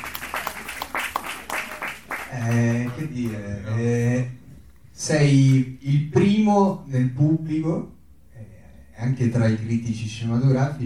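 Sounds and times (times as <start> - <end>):
audience at a film discussion event applauding: 0.0 - 3.4
speech: 2.3 - 4.4, 5.0 - 8.0, 9.0 - 10.8.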